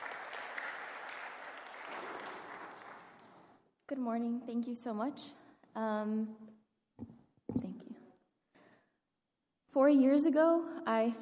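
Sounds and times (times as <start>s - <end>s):
audience applause: 0.0s - 3.5s
speech: 3.9s - 6.6s, 9.8s - 11.2s.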